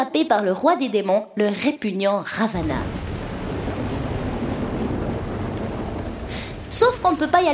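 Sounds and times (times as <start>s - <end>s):
speech: 0.0s - 3.0s, 6.7s - 7.5s
heavy steady monsoon downpour: 2.5s - 7.5s
thunder: 2.6s - 7.5s.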